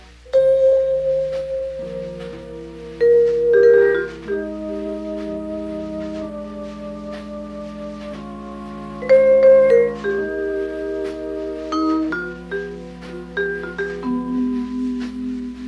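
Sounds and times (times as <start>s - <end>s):
vibraphone playing: 0.3s - 5.2s, 9.0s - 15.6s.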